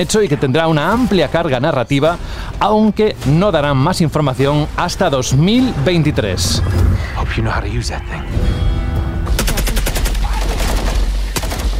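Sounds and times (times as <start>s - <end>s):
speech: 0.0s - 8.7s
dense video game battle soundscape: 0.0s - 11.7s
video game automatic weapon fire: 9.3s - 11.7s.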